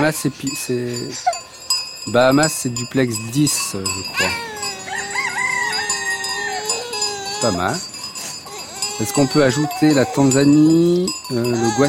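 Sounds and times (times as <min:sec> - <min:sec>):
speech: 0:00.0 - 0:01.4, 0:02.0 - 0:04.5, 0:07.4 - 0:07.9, 0:09.0 - 0:11.8
rooster in the Bahamas crowing: 0:04.5 - 0:07.4.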